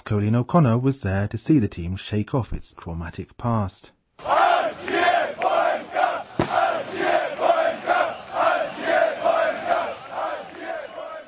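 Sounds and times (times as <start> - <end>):
speech: 0.1 - 5.4
large crowd of football fans chanting at a home match in a cramped stadium: 4.2 - 11.2
sharp thud: 6.4 - 6.8.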